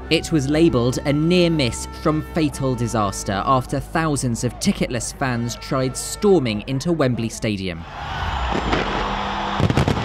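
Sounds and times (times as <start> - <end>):
speech: 0.1 - 9.8
New Year's Eve fireworks in London banging and crackling: 8.5 - 10.0.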